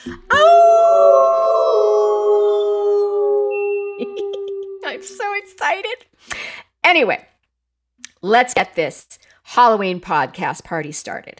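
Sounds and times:
person howling like a wolf: 0.2s - 5.4s
speech: 5.7s - 7.3s, 8.2s - 11.3s.

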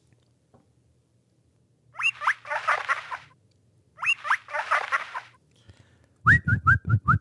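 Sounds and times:
person whistling an imitation of a guinea pig: 2.0s - 2.4s, 4.0s - 4.5s, 6.3s - 7.1s.

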